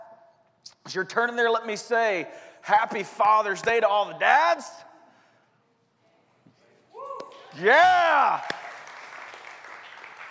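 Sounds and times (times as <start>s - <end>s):
speech: 0.9s - 4.9s, 7.6s - 8.5s
crowd of people clapping in a large room: 7.2s - 10.2s.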